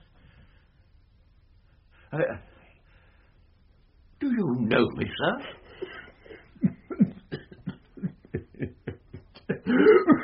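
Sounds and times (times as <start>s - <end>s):
speech: 2.1s - 2.5s, 4.4s - 6.0s
person coughing: 5.8s - 8.4s, 9.4s - 10.2s
laughter: 5.8s - 10.2s.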